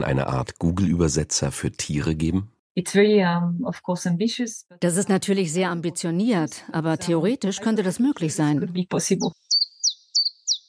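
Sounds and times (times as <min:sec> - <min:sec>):
speech: 0:00.0 - 0:09.8
common chiffchaff singing: 0:09.2 - 0:10.6.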